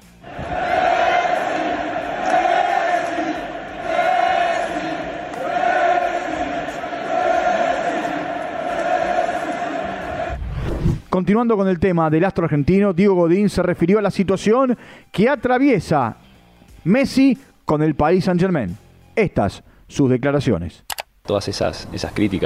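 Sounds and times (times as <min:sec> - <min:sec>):
huge stadium crowd chanting a name in unison: 0:00.0 - 0:10.4
speech: 0:11.2 - 0:16.2, 0:16.8 - 0:22.4.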